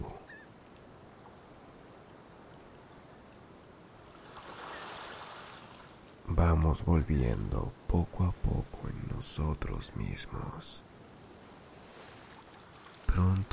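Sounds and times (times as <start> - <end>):
ocean surf washing on a rising tide: 3.4 - 13.5
speech: 6.5 - 10.9.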